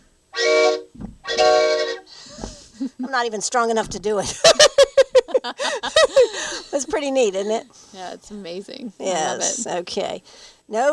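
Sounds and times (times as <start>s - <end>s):
train whistle blasts: 0.0s - 2.6s
soft hiss: 0.0s - 10.9s
laughter: 1.8s - 3.3s, 4.2s - 7.6s
speech: 3.1s - 4.6s, 5.4s - 10.9s.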